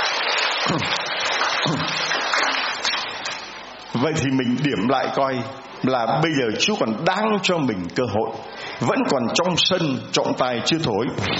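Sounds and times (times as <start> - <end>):
crowd applause: 0.0 - 3.7
speech: 4.0 - 11.3.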